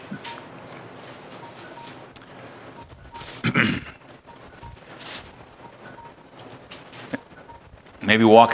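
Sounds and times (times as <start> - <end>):
cell phone ringing with an electronic chirp: 0.0 - 8.1
faint rustling: 0.0 - 8.2
speech: 8.1 - 8.5.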